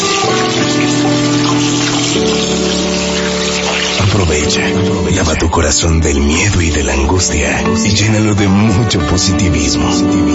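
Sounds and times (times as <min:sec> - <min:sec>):
water running from a tap for washing hands: 0:00.0 - 0:06.8
speech: 0:04.4 - 0:10.3.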